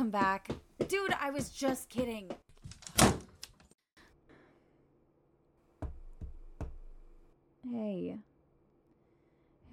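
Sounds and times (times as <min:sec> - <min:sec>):
speech: 0:00.1 - 0:02.4, 0:07.7 - 0:08.3
door shutting with a loud thud: 0:02.8 - 0:03.4.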